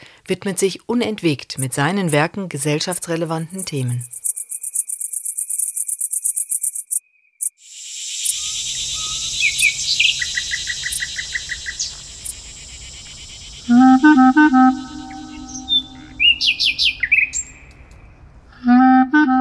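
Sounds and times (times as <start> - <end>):
speech: 0.3 - 4.2
nightingale singing: 2.8 - 18.1.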